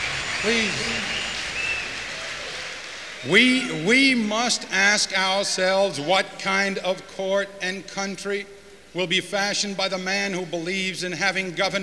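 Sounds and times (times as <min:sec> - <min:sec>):
large convention crowd roaring and cheering: 0:00.0 - 0:05.8
speech: 0:00.4 - 0:01.2, 0:03.2 - 0:11.8.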